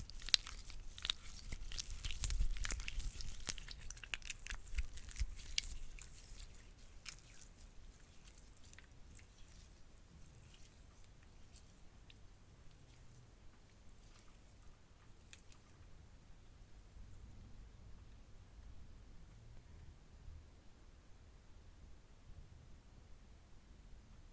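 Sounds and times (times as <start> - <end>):
slime being pressed and squished, popping and crackling: 0.0 - 9.6.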